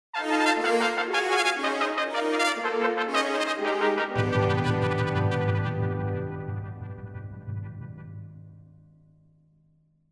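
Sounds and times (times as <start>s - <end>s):
trumpets playing fast staccato passages: 0.2s - 6.9s.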